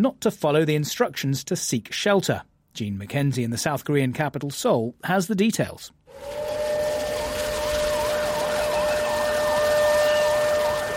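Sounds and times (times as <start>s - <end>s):
speech: 0.0s - 6.6s
air raid siren wailing: 6.1s - 10.9s.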